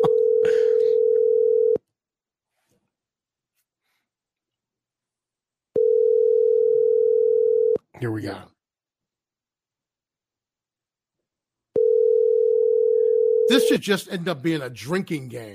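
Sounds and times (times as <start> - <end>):
steady electronic telephone tone: 0.0 - 1.8, 5.8 - 7.8, 11.8 - 13.6
speech: 8.0 - 8.6, 13.5 - 15.5.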